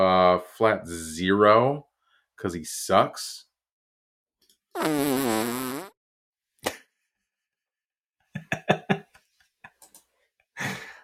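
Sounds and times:
speech: 0.4 - 3.5, 4.8 - 5.9
fart sound effects: 4.7 - 6.0
laughter: 8.3 - 9.8.

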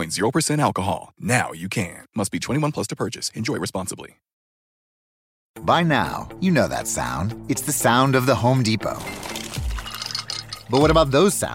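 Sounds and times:
speech: 0.0 - 4.3, 5.6 - 9.3, 10.7 - 11.5
water pouring from a Samsung Bespoke refrigerator dispenser into a built-in pitcher: 8.9 - 10.9.

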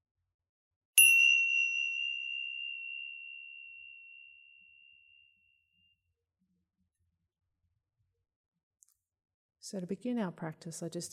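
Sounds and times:
single meditation chime struck: 1.0 - 6.0
speech: 9.6 - 11.1.

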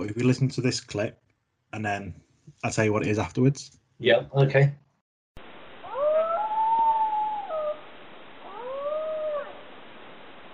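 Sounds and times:
speech: 0.0 - 4.8
dingo howling: 5.8 - 7.8, 8.4 - 9.7.

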